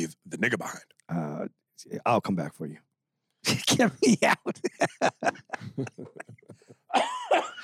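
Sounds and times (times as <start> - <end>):
speech: 0.0 - 2.8, 3.4 - 7.6
laughter: 3.8 - 7.6
person coughing: 6.9 - 7.6.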